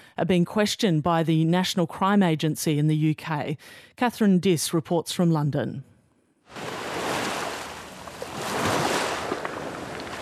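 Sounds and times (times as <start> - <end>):
speech: 0.2 - 5.9
waves breaking on the beach at Wimereux on the French coast: 6.5 - 10.2.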